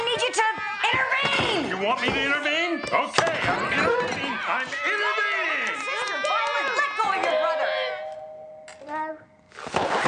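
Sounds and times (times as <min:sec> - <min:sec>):
loud overlapping voices: 0:00.0 - 0:09.3
speech: 0:01.8 - 0:05.3
doorbell chime: 0:07.3 - 0:09.5.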